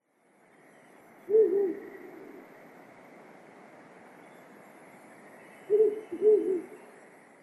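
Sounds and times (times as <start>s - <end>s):
steady hiss: 0.0s - 7.4s
Ural owl hooting: 1.3s - 2.4s, 5.4s - 6.9s.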